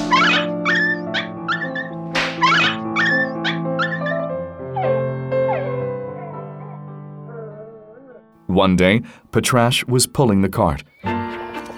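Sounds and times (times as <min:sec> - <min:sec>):
dog whimpering in pain: 0:00.0 - 0:08.3
speech: 0:08.6 - 0:10.9.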